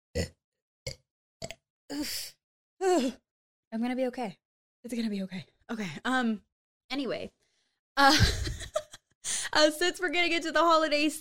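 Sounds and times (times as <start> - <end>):
person burping throaty bursts: 0.1 - 1.6
speech: 0.2 - 0.4, 1.9 - 7.4, 8.0 - 8.5, 9.6 - 11.2.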